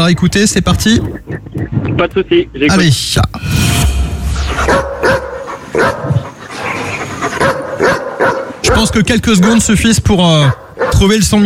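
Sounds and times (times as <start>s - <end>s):
speech: 0.0s - 3.9s, 4.6s - 5.2s, 8.6s - 11.4s
dog barking with yips and whimpers: 4.7s - 6.3s, 7.0s - 9.7s, 10.5s - 11.1s.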